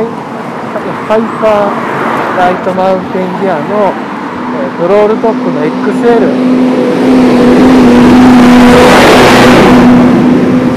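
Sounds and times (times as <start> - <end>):
truck engine passing by on a road: 0.0 - 10.7
speech: 1.1 - 1.8, 2.4 - 10.2.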